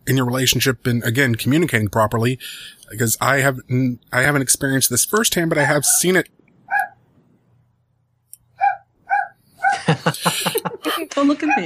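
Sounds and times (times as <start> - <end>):
speech: 0.1 - 6.4
dog barking with short yelping barks in the background: 6.7 - 7.0, 8.6 - 9.9
laughter: 9.7 - 11.2.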